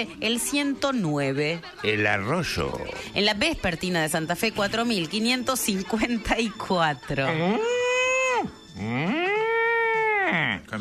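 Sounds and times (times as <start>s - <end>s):
speech: 0.0s - 7.8s, 8.8s - 9.2s
cow mooing sound effect: 7.3s - 10.6s.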